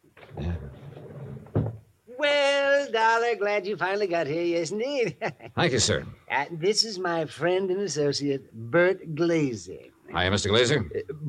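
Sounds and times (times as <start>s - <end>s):
door knocking shut: 1.4s - 1.9s
speech: 2.2s - 11.2s.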